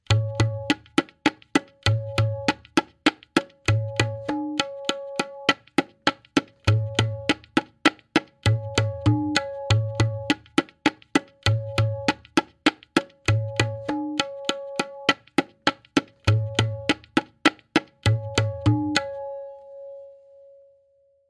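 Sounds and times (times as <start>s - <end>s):
tabla playing a Benares kaida variation in tintal: 0.0s - 19.6s.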